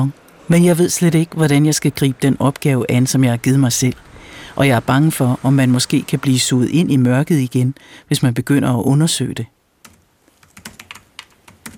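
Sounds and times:
speech: 0:00.0 - 0:09.6
computer keyboard typing: 0:09.8 - 0:11.7.

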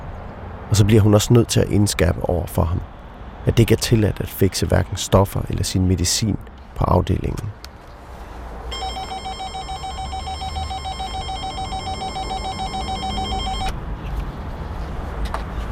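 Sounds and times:
speech: 0:00.7 - 0:07.7
door intercom long steady electronic ring: 0:08.7 - 0:13.8.

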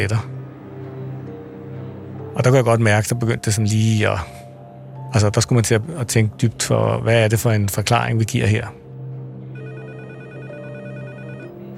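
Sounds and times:
speech: 0:00.0 - 0:00.4, 0:02.4 - 0:04.4, 0:05.1 - 0:08.8
old corded desk telephone bell ringing in a rattling trill: 0:09.6 - 0:11.7.

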